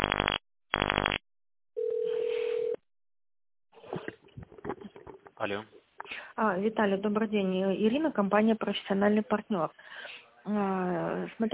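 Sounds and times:
crackling telephone line noise: 0.0 - 1.2
steady single-pitch telephone tone: 1.8 - 2.8
speech: 6.5 - 11.5.

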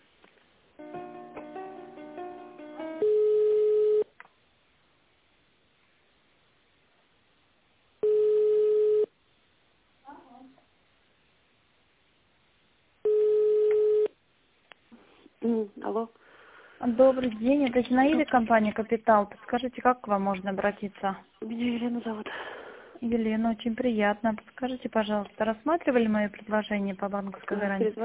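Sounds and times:
telephone line beeps while connecting a call: 3.0 - 4.1, 8.0 - 9.1, 13.1 - 14.1
speech: 15.8 - 16.2, 16.9 - 28.0.

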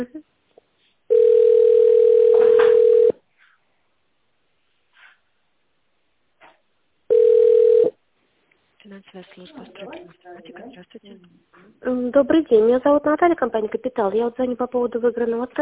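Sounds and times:
telephone ringback tone while a call is transferred: 1.1 - 3.2, 7.1 - 8.0
speech: 9.1 - 15.6.

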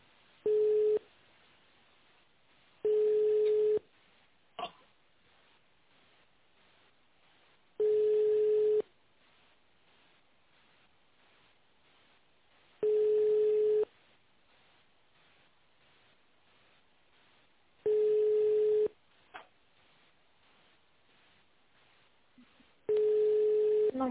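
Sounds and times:
ringback tone on a phone line: 0.5 - 1.0, 2.8 - 3.8, 7.8 - 8.8, 12.8 - 13.9, 17.9 - 19.0, 22.9 - 23.9.

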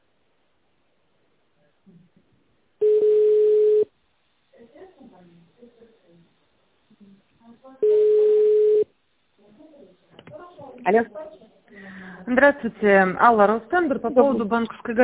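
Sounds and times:
telephone line tones during call transfer: 2.8 - 3.9, 7.8 - 8.9
speech: 10.9 - 11.2, 12.3 - 15.0.

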